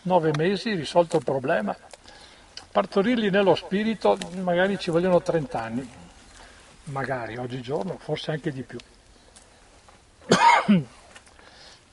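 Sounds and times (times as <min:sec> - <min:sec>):
speech: 0:00.0 - 0:02.0, 0:02.8 - 0:06.0, 0:06.9 - 0:08.9, 0:10.3 - 0:11.0
person coughing: 0:10.3 - 0:10.9
throat clearing: 0:10.3 - 0:11.0.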